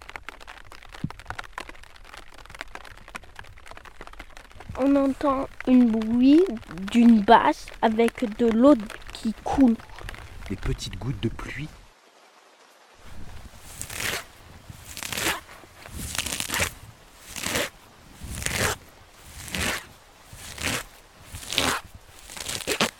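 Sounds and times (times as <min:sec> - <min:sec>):
grass, leaves and laurel branches rustling: 0:00.0 - 0:22.9
speech: 0:04.8 - 0:11.8.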